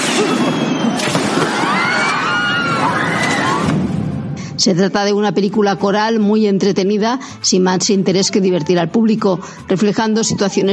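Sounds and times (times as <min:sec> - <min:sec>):
fireworks bursting: 0:00.0 - 0:01.6
whistling fireworks streaks rising and falling: 0:00.0 - 0:02.0
loud crowd noise: 0:00.0 - 0:04.1
speech: 0:00.2 - 0:01.7, 0:04.6 - 0:10.7.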